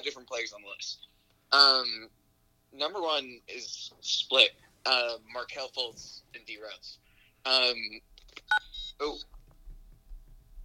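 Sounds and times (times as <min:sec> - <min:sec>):
speech: 0:00.0 - 0:09.4
electronic phone keypad beeps: 0:08.5 - 0:09.0.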